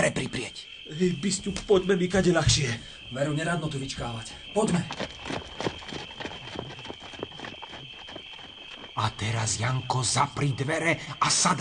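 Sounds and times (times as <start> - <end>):
speech: 0.0 - 5.6, 9.0 - 11.6
horses' hooves galloping: 4.6 - 9.6.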